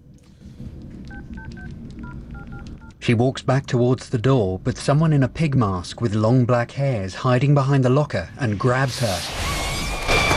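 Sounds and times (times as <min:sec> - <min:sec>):
steady low rumble of noise in an empty locker room: 0:00.0 - 0:09.2
mobile phone keypad tones as a woman dials: 0:01.1 - 0:03.0
speech: 0:01.5 - 0:09.4.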